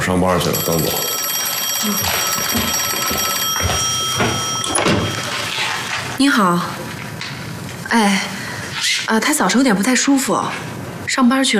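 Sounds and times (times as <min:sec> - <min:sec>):
speech: 0:00.1 - 0:01.2, 0:01.8 - 0:03.8, 0:06.2 - 0:06.8, 0:07.9 - 0:08.4, 0:09.1 - 0:11.5
telephone with bright metallic bell ringing: 0:00.3 - 0:06.2.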